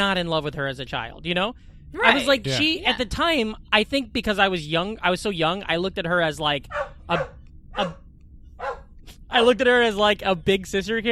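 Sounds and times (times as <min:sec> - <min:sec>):
speech: 0:00.0 - 0:08.0, 0:08.6 - 0:11.1
low rumble: 0:00.0 - 0:11.1
dog barking: 0:06.7 - 0:08.0, 0:08.6 - 0:08.9.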